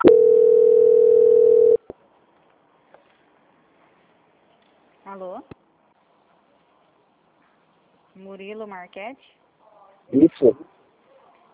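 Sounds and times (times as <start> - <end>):
single-pitch telephone tone during a call transfer: 0.0 - 1.8
speech: 5.2 - 5.6, 8.2 - 9.4, 10.1 - 10.8.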